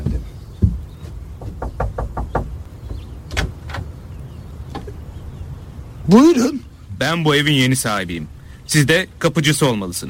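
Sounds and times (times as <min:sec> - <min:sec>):
knocking on the door of a porter's lodge at a large mansion: 0:00.0 - 0:03.0
louder single thuds: 0:00.0 - 0:04.0
low rumbling background: 0:00.0 - 0:09.9
speech: 0:06.1 - 0:10.0.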